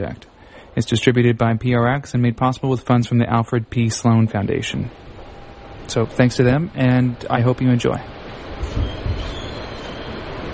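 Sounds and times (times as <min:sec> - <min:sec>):
speech: 0:00.0 - 0:05.1, 0:05.9 - 0:09.0
faint metallic whine from subway train: 0:00.0 - 0:10.5
New York City subway train rumbling along the rails heard from inside the car: 0:04.7 - 0:10.5.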